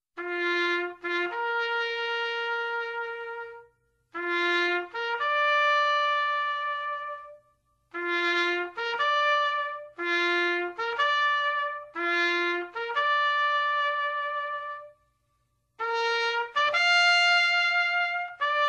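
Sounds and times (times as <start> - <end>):
military funeral trumpet playing: 0.2 - 15.0, 15.8 - 18.6.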